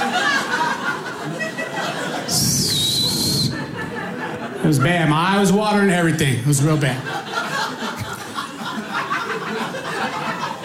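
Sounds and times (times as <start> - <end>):
murmur of crowd chatter: 0.0 - 10.6
scattered audience laughter: 0.0 - 10.6
shrill whistle from the audience: 2.4 - 3.6
speech: 4.6 - 7.2.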